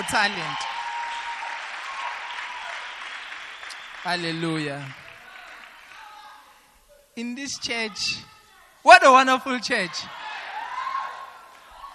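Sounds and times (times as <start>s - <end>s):
speech: 0.0s - 0.7s, 4.0s - 5.0s, 7.2s - 10.3s
crowd applauding: 0.0s - 6.4s, 10.1s - 11.9s.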